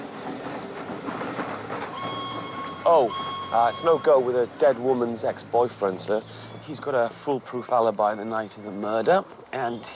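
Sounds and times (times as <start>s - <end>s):
steam train chugging past: 0.0s - 8.9s
steam train rattling wheels: 0.0s - 9.9s
thin whistle-like tone: 1.9s - 4.3s
speech: 2.8s - 9.9s.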